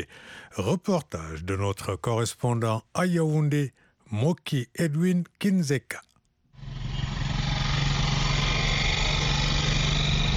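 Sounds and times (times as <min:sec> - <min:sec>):
speech: 0:00.0 - 0:06.1
small motorcycle taxi engine running in a street in Yaoundé: 0:06.6 - 0:10.3.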